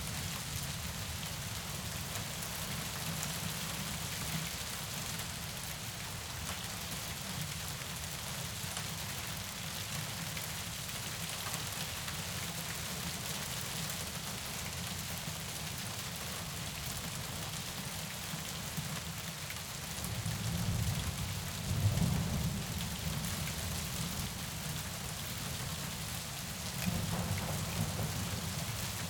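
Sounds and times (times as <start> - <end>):
heavy rain: 0.0 - 29.0
low rumble of thunder: 26.8 - 29.0.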